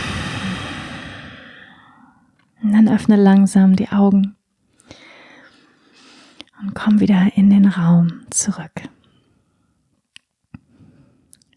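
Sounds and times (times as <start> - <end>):
deep breath in and out during a guided relaxation exercise: 0.0 - 2.3, 4.9 - 6.4
speech: 2.7 - 4.4, 6.6 - 9.0.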